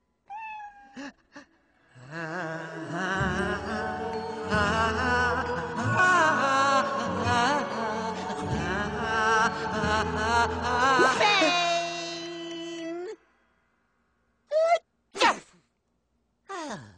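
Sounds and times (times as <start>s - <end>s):
long wavering strained vocal buildup: 1.9s - 13.2s
quick sharp sneezes: 14.6s - 15.6s.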